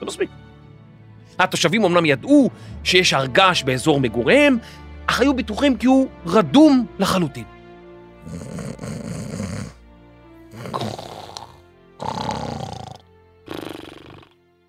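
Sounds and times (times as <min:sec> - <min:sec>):
speech: 0:00.0 - 0:00.5, 0:01.4 - 0:07.5, 0:08.2 - 0:09.5
loud rumbling snores: 0:08.2 - 0:09.8, 0:10.5 - 0:14.4.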